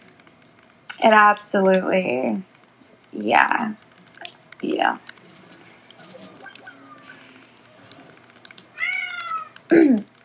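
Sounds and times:
faint clicks: 0:00.0 - 0:10.2
speech: 0:01.0 - 0:02.5, 0:03.2 - 0:03.9, 0:04.6 - 0:05.1, 0:09.7 - 0:10.1
female cat meowing: 0:06.0 - 0:07.8, 0:08.7 - 0:09.7.

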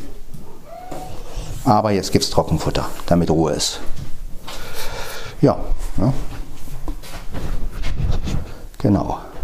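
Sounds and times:
cat meowing: 0:00.6 - 0:01.5
speech: 0:01.7 - 0:04.0, 0:05.4 - 0:06.3, 0:08.8 - 0:09.3.

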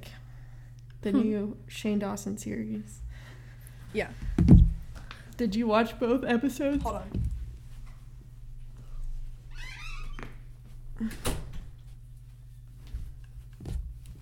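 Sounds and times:
speech: 0:01.0 - 0:03.0, 0:03.9 - 0:04.8, 0:05.4 - 0:07.3, 0:11.0 - 0:11.4
door creaking with a squeaky hinge: 0:09.5 - 0:10.4
door shutting with a solid thump: 0:11.0 - 0:11.8.

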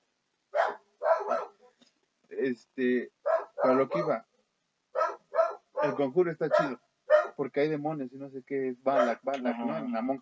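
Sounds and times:
dog barking: 0:00.5 - 0:01.6, 0:03.2 - 0:04.1, 0:04.9 - 0:07.4, 0:08.9 - 0:09.2
speech: 0:02.4 - 0:04.3, 0:05.8 - 0:10.1.

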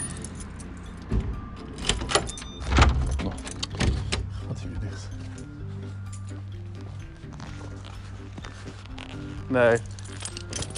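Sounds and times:
keys jangling: 0:00.0 - 0:04.3, 0:05.2 - 0:06.6, 0:08.9 - 0:10.7
car lock clicks and thuds: 0:01.0 - 0:04.3
speech: 0:09.5 - 0:09.9.

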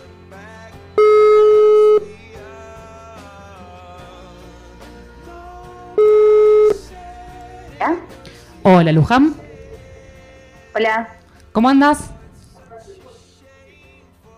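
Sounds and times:
soft music: 0:00.0 - 0:14.3
telephone ringback tone: 0:01.0 - 0:02.2, 0:06.0 - 0:07.0
speech: 0:08.8 - 0:09.4, 0:10.8 - 0:12.1.

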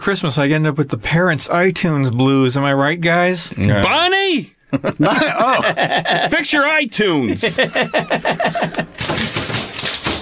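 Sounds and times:
speech: 0:00.0 - 0:09.5
laughter: 0:04.7 - 0:06.6, 0:07.2 - 0:09.1
typewriters played as percussion with keys clattering: 0:08.9 - 0:10.2.

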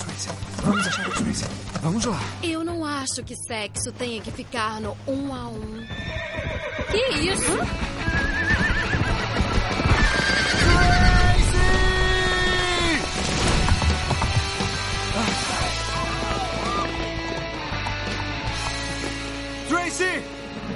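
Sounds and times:
horse hooves clattering: 0:00.0 - 0:02.4, 0:03.7 - 0:20.7
horse whinnying with shrill wavering neighs: 0:00.6 - 0:01.4, 0:05.8 - 0:11.2
speech: 0:00.6 - 0:08.6.

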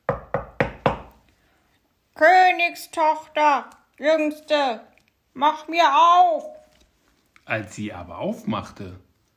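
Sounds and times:
firm knocking on a door: 0:00.1 - 0:01.2
speech: 0:02.2 - 0:06.6, 0:07.5 - 0:09.0.

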